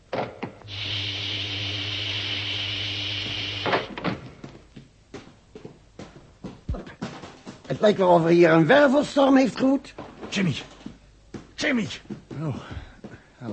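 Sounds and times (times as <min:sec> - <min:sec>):
inner door mechanism whirring with a hissing edge: 0:00.6 - 0:04.2
speech: 0:07.8 - 0:10.7, 0:11.6 - 0:12.8.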